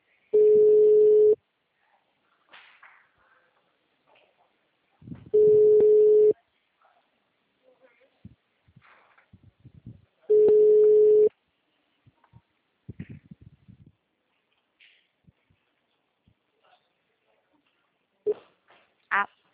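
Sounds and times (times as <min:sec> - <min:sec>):
telephone ringback tone while a call waits to be answered: 0:00.4 - 0:01.4, 0:05.4 - 0:06.3, 0:10.3 - 0:11.3.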